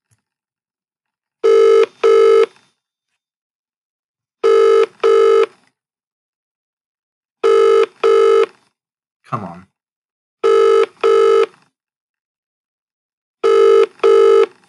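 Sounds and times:
telephone ringback tone heard from the caller's end: 1.4 - 2.5, 4.4 - 5.5, 7.4 - 8.5, 10.4 - 11.5, 13.4 - 14.5
speech: 9.3 - 9.7.

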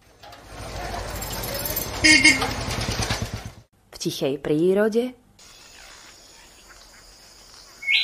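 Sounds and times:
steady wash of big-city traffic: 0.0 - 3.7
throbbing engine idle on a big-city street: 0.0 - 3.7
speech: 2.0 - 2.8, 4.0 - 5.2.

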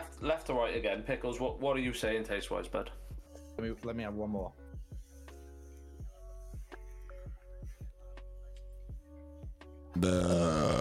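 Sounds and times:
speech: 0.2 - 4.6, 10.0 - 10.7
long nose burp after sniffing in: 10.0 - 10.7.

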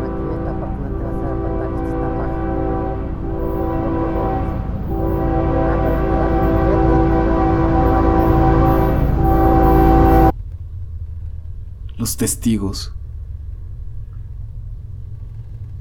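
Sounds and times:
train horn sounding as the train arrives or leaves: 0.0 - 10.3
train rumble: 0.0 - 15.8
speech: 12.1 - 13.0.

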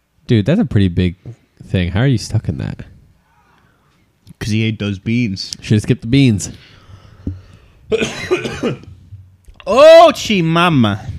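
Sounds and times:
speech: 0.3 - 2.9, 4.4 - 6.7, 7.9 - 8.9, 9.6 - 11.1
harsh coughing: 7.9 - 9.0.

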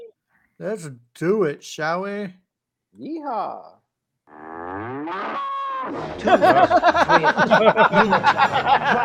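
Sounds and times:
speech: 0.6 - 9.0
cattle mooing on an old-fashioned cattle drive: 4.3 - 6.2
laughter: 6.0 - 9.0.

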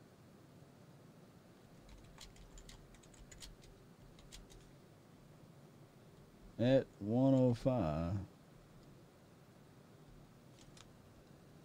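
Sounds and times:
steady low hum: 0.0 - 11.6
computer keyboard clicks: 1.8 - 4.7, 10.6 - 10.9
speech: 6.6 - 8.3.

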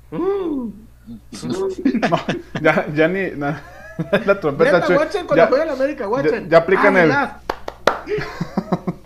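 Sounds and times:
speech: 0.1 - 7.4, 8.0 - 8.7
laughter: 1.4 - 2.9, 3.5 - 5.3, 8.0 - 9.0
sharp hand claps: 7.4 - 8.2.

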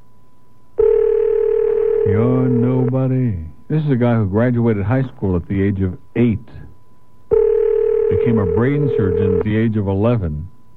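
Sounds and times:
steady loud electronic telephone tone: 0.8 - 3.2, 7.3 - 9.7
speech: 2.1 - 6.6, 8.1 - 10.5.

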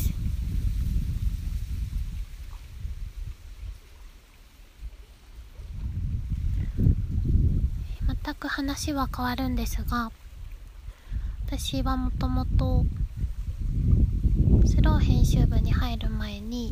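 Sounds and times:
lake water lapping and washing at Lake Shikaribetsu: 0.0 - 12.1
low rumbling wind buffeting the microphone at Lake Shikaribetsu: 0.0 - 16.7
speech: 8.3 - 10.2, 11.5 - 13.0, 14.6 - 16.3.

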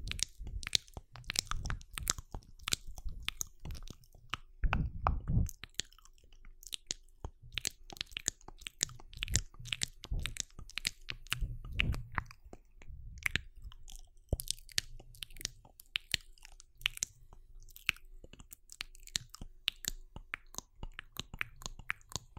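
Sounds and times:
crunchy chewing noises: 0.0 - 22.3
wet mouth clicks and smacks: 0.0 - 22.3
heavier bursts with a thick low thump: 4.6 - 5.5.

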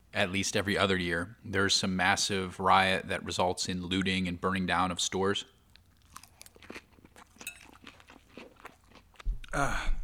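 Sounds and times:
speech: 0.1 - 5.6, 9.5 - 10.0
crisp, crunchy chewing of a salad: 5.6 - 9.3.

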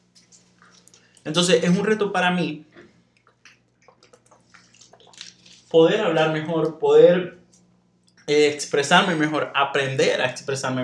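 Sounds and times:
low steady hum: 0.0 - 10.8
speech: 1.2 - 2.7, 5.7 - 7.4, 8.3 - 10.8
water pouring and splashing: 3.2 - 5.8.

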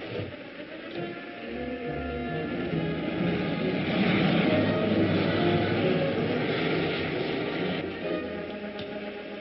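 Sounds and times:
aircraft engine droning as the plane turns in for a landing: 0.0 - 9.4.

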